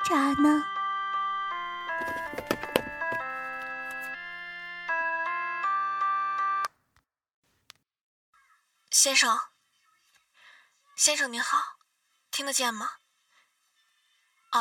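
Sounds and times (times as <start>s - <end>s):
speech: 0.1s - 0.7s, 9.0s - 9.5s, 11.0s - 11.8s, 12.4s - 13.0s
phone ringing with bright electronic melodic ringtone: 0.3s - 6.7s.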